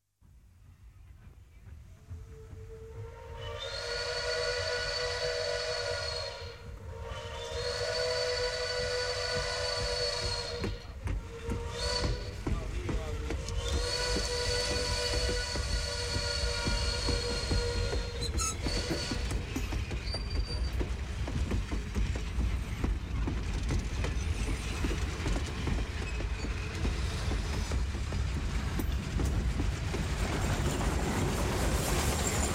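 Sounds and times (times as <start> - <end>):
train passing: 0.2 - 32.5
train whistle: 2.1 - 19.6.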